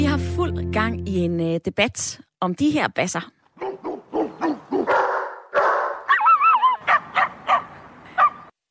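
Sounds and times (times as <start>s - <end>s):
speech: 0.4s - 3.4s
dog barking: 3.6s - 8.5s.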